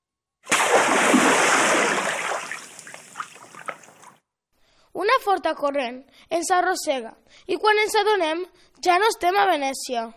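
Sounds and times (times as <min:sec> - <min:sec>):
loud splash of something plunging into water: 0:00.5 - 0:04.0
speech: 0:05.2 - 0:10.1.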